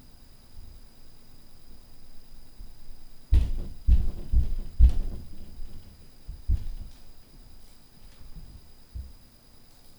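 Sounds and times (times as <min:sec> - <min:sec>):
footsteps walking: 0:03.3 - 0:09.2.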